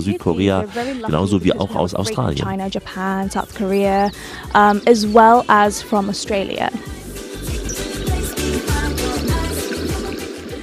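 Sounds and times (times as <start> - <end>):
speech: 0.0 - 7.0
sea waves rushing on a small island in the Indian Ocean: 4.2 - 10.6.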